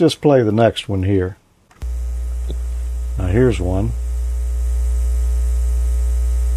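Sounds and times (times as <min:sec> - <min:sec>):
speech: 0:00.0 - 0:01.4, 0:03.2 - 0:04.0
loud deep electrical hum with buzzy overtones: 0:01.8 - 0:06.5.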